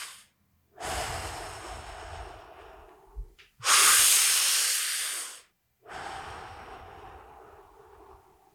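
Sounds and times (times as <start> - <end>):
person breathing deeply in and out through the mouth in a breathing exercise: 0.8 - 8.5.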